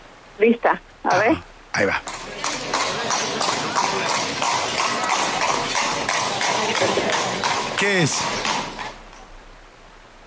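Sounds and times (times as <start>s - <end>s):
speech: 0.4s - 2.2s, 6.6s - 8.6s
horse-drawn cart rattling and rumbling: 1.9s - 9.3s
horse hooves clip-clopping while pulling a cart at a trot: 1.9s - 9.4s.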